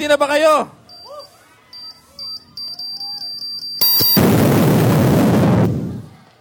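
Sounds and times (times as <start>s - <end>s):
short high regular bomb beeps: 0.9s - 4.3s
bomb explosion effect blast: 3.8s - 6.1s.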